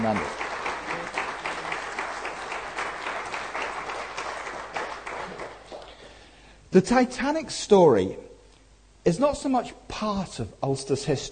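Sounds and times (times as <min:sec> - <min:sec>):
large audience applauding: 0:00.0 - 0:06.3
speech: 0:00.1 - 0:00.4, 0:06.8 - 0:08.3, 0:09.0 - 0:11.3.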